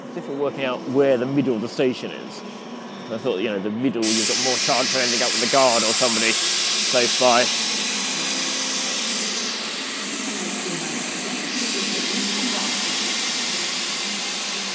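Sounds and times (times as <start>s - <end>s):
speech: 0.2s - 7.7s
train engine idling at a station: 4.2s - 14.7s.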